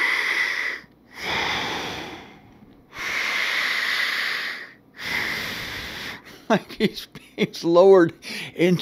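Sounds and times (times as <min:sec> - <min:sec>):
loud airy breathing sound effect: 0:00.0 - 0:06.5, 0:08.2 - 0:08.6
speech: 0:06.5 - 0:08.8.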